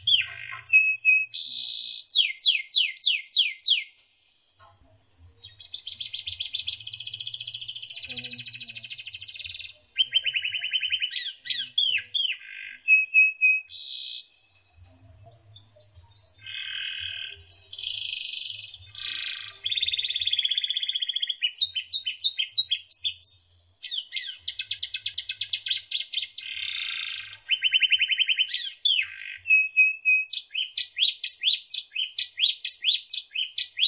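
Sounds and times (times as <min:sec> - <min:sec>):
canary song with trills, buzzy bursts and rapid chips: 0:00.0 - 0:33.8.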